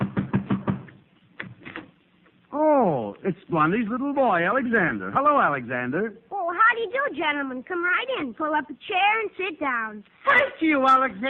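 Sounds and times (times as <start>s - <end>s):
knocking on a door: 0.0s - 0.9s
speech: 3.2s - 11.2s.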